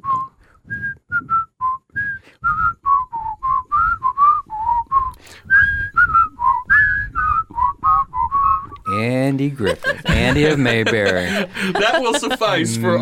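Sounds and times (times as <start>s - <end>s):
person whistling a TV theme song melody: 0.0s - 9.0s
speech: 9.0s - 13.0s
laughter: 9.5s - 13.0s.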